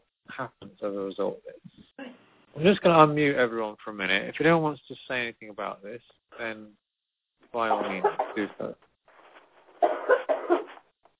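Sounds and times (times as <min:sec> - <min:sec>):
speech: 0:00.4 - 0:06.8, 0:07.5 - 0:08.9
person coughing on an online group call: 0:09.8 - 0:10.8.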